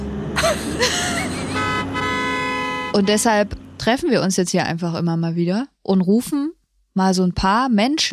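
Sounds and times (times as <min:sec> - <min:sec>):
low traffic rumble: 0:00.0 - 0:05.5
speech: 0:00.5 - 0:01.4, 0:03.0 - 0:08.1
bus horn honking: 0:01.2 - 0:03.6.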